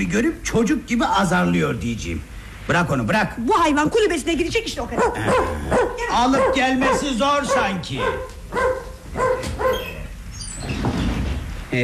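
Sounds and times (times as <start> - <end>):
speech: 0.0 - 8.8
noise: 0.0 - 11.8
dog barking with a whimpering edge: 4.9 - 10.0
dog whining: 4.9 - 10.7.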